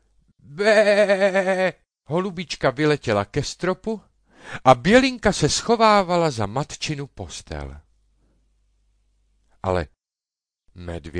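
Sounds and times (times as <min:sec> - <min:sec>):
sheep bleating: 0:00.5 - 0:01.7
speech: 0:00.5 - 0:07.8, 0:09.6 - 0:10.0, 0:10.8 - 0:11.1.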